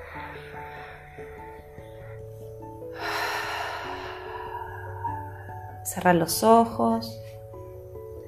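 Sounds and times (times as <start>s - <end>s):
soft music with sustained tones: 0.0s - 8.2s
deep breathy exhale through the mouth: 2.9s - 5.8s
speech: 5.9s - 7.2s.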